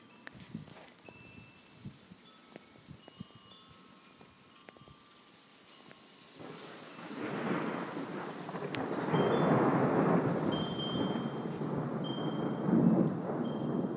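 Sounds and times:
light rain pattering with scattered drips: 0.0 - 13.9
long deep rumble of thunder: 6.4 - 13.9.

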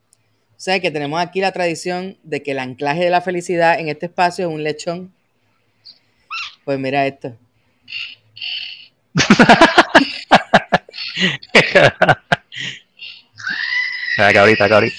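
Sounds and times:
speech: 0.6 - 5.2, 6.6 - 8.2, 9.2 - 10.2, 11.2 - 12.8, 14.2 - 14.9
faint higher animal calls: 6.3 - 6.7, 13.0 - 14.9
laughter: 9.2 - 12.8, 14.2 - 14.9
rapid snorting and squealing animal noises: 13.1 - 14.9.

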